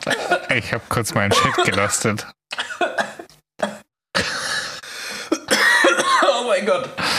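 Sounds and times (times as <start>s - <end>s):
person coughing harshly after choking on something: 0.0s - 0.5s, 1.3s - 4.5s, 5.3s - 6.4s
speech: 0.0s - 2.4s, 6.5s - 7.1s.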